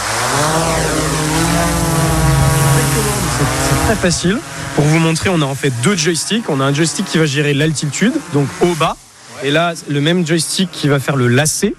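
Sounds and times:
camera drone propellers spinning while taking off: 0.0 - 11.6
speech: 3.9 - 11.7.

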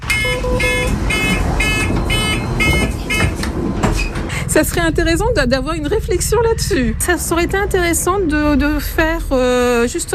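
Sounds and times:
bus warning beeps: 0.0 - 4.1
low engine rumble: 0.0 - 10.1
speech: 4.6 - 10.1.

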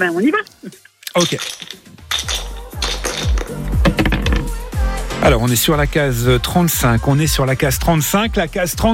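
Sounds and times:
speech: 0.0 - 1.6, 5.3 - 8.9
dice rattling and clattering: 1.1 - 4.5.

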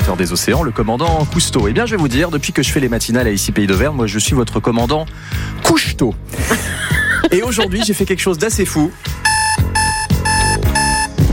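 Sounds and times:
speech: 0.1 - 9.3
laughter: 6.3 - 8.3
electronic alarm clock ringing: 9.2 - 11.2.

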